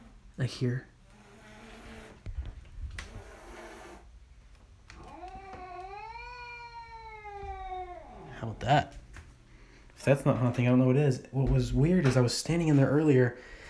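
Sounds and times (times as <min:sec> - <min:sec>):
speech: 0:00.4 - 0:00.9, 0:08.6 - 0:09.0, 0:10.0 - 0:13.6
cat at a door wailing meow: 0:04.9 - 0:08.4.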